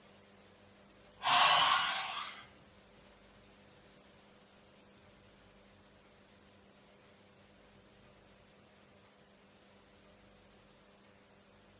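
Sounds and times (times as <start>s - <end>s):
deep inhale during a breathing exercise: 1.2s - 2.5s.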